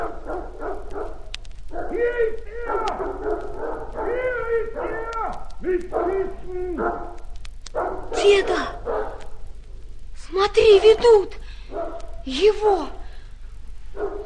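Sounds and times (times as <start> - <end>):
dog barking and yelping: 0.0 - 2.0, 2.7 - 5.1, 5.9 - 9.4, 11.7 - 12.2, 13.9 - 14.2
speech: 10.7 - 11.4, 12.2 - 13.0.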